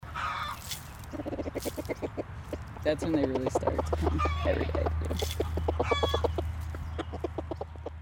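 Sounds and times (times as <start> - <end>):
higher chicken squawk: 0.1 - 2.3, 3.6 - 7.7
several chickens clucking: 0.1 - 8.0
speech: 1.1 - 2.1, 2.8 - 5.4.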